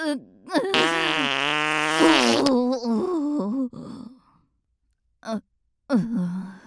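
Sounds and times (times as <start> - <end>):
speech: 0.1 - 0.6, 5.2 - 6.5
farting: 0.7 - 2.6.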